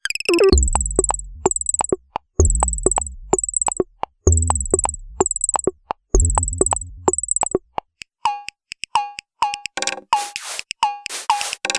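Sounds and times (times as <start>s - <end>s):
percussion sets: 0.4s - 11.7s.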